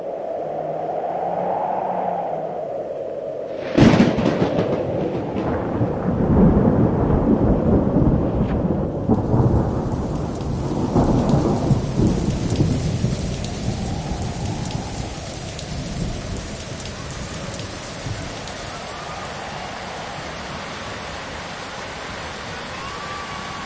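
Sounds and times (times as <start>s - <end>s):
heavy rain pouring: 0.0s - 23.6s
thunder rumbling and cracking: 3.5s - 21.3s.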